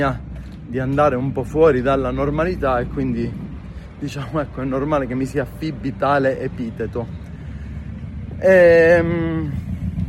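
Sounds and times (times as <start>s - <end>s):
speech: 0.0s - 3.4s, 4.0s - 7.2s, 8.4s - 9.7s
motorcycle passing by: 8.7s - 10.0s.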